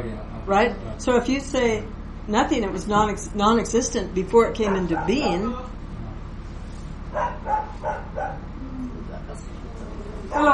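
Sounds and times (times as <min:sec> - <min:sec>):
speech: 0:00.5 - 0:05.8, 0:10.3 - 0:10.5
dog barking: 0:04.9 - 0:05.4, 0:07.1 - 0:08.5.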